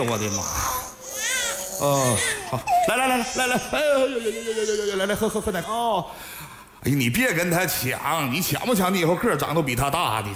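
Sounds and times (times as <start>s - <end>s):
speech: 0.0s - 0.7s, 1.8s - 10.3s
baby crying from hunger: 0.1s - 5.8s.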